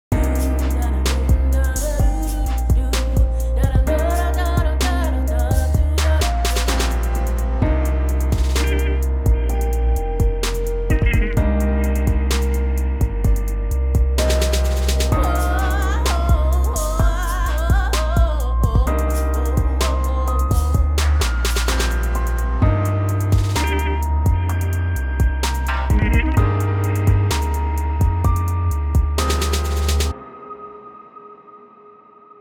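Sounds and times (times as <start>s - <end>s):
song with reverb: 0.1s - 32.4s.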